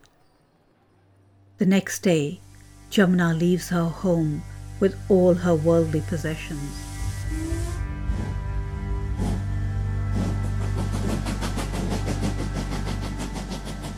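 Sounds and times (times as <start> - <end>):
speech: 1.6 - 7.8
train engine drone on a train heading towards the Himalayas: 1.6 - 13.9
train wheels clacking over rail joints: 10.2 - 13.9.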